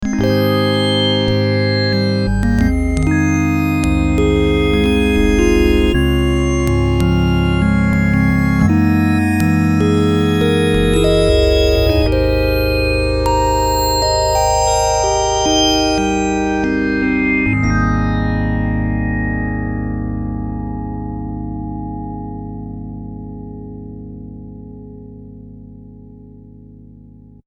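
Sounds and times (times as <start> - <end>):
electric piano on a synthesizer: 0.0 - 27.4.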